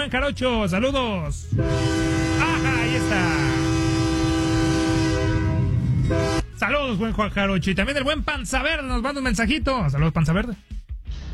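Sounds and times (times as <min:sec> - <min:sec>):
low rumble: 0:00.0 - 0:09.0
speech: 0:00.1 - 0:03.7, 0:06.1 - 0:10.8
train horn blowing in one long blast: 0:01.5 - 0:06.6.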